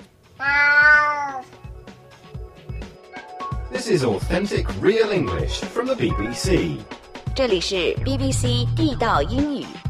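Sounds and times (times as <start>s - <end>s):
cat meowing: 0.4s - 1.7s
speech: 3.9s - 9.8s.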